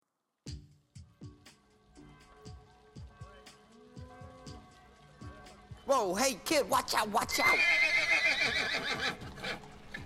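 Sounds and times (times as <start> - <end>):
speech: 5.9 - 7.9
taxi horse whinnying: 7.3 - 10.0.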